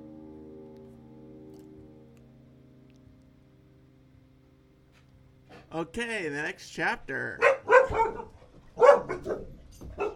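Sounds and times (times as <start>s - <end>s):
speech: 5.7s - 8.4s
dogs barking: 7.4s - 10.1s.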